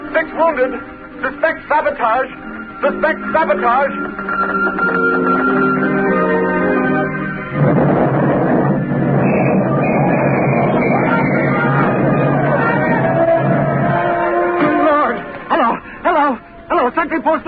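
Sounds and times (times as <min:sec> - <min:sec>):
droning tones: 0:00.0 - 0:16.8
speech: 0:00.2 - 0:05.9
raging fire roaring in dry dock: 0:07.3 - 0:14.6
explosion in dry dock: 0:07.5 - 0:14.1.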